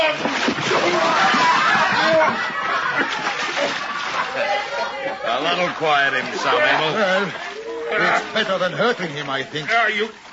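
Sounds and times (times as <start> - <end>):
churning sloshing water: 0.0 - 10.3
heavy splash of a man dropped into water: 0.0 - 10.3
people chuckling: 0.9 - 9.0
speech: 5.6 - 10.2.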